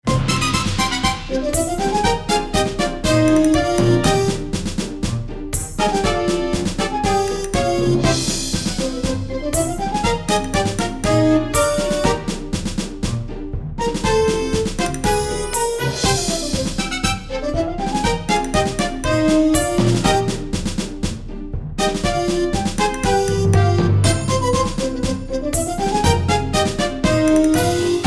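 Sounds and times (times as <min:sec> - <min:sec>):
orchestral music: 0:00.0 - 0:28.0.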